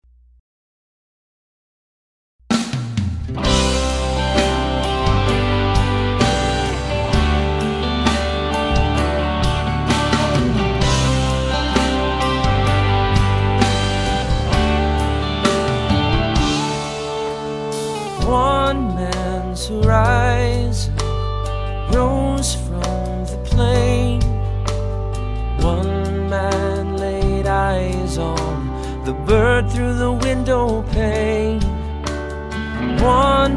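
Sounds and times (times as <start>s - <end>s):
music: 2.5s - 33.5s
man singing: 18.0s - 21.1s, 21.9s - 24.5s, 25.6s - 31.9s, 32.8s - 33.5s.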